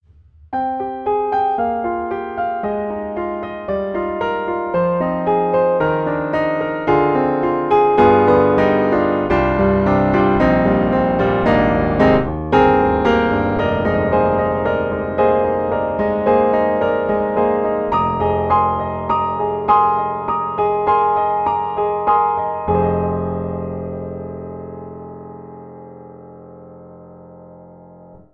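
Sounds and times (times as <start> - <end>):
piano under lid: 0.0 - 28.3.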